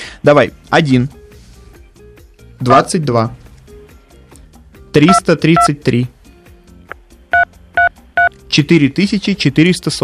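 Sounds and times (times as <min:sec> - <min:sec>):
speech: 0:00.2 - 0:01.2, 0:02.6 - 0:03.4, 0:05.0 - 0:06.2, 0:08.6 - 0:10.0
phone keypad beeps while typing dictated numbers: 0:07.4 - 0:08.3.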